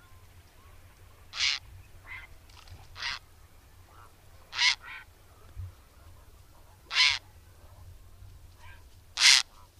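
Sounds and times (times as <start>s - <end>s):
grey heron croaking: 1.3s - 2.3s, 3.0s - 3.3s, 3.9s - 5.1s, 6.7s - 7.4s, 8.6s - 9.7s.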